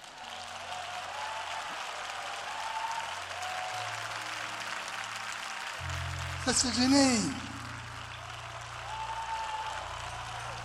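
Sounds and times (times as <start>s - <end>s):
congregation applauding: 0.0s - 10.6s
sustained organ chords: 5.8s - 8.9s
speech: 6.5s - 7.5s.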